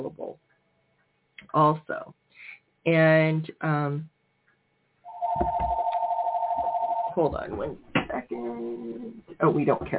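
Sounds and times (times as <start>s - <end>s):
speech: 1.5s - 2.2s, 2.8s - 4.1s, 7.2s - 9.9s
telephone ringing in a house: 5.1s - 7.2s.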